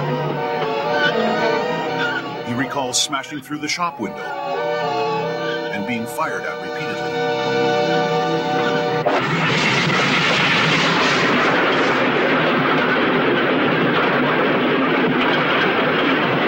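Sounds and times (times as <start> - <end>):
harmonic tonal hum: 0.0 - 10.2
train speeding across the prairies with a rushing roar: 0.0 - 16.4
speech: 2.9 - 4.7, 5.9 - 8.0.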